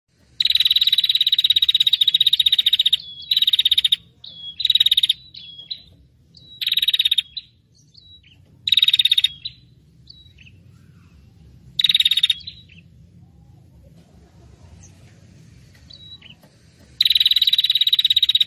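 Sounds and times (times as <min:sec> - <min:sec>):
prinia calling in rapid high rattling bursts: 0:00.3 - 0:10.5, 0:11.8 - 0:13.0, 0:15.8 - 0:18.4.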